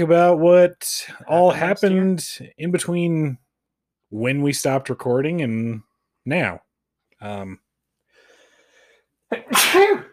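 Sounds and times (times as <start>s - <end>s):
speech: 0.0s - 3.4s, 4.1s - 6.6s, 7.2s - 7.6s, 9.3s - 10.1s
faint inhale: 8.0s - 9.2s
person sneezing: 9.3s - 10.1s.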